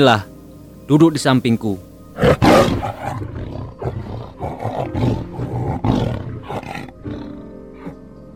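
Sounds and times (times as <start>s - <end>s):
speech: 0.0s - 0.3s, 0.9s - 3.4s
white tiger roaring: 2.2s - 8.0s.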